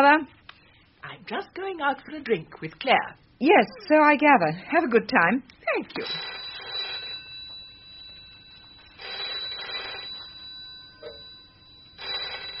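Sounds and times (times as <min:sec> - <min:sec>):
speech: 0:00.0 - 0:00.4, 0:01.0 - 0:06.4
telephone bell ringing with metallic trilling: 0:06.0 - 0:12.5.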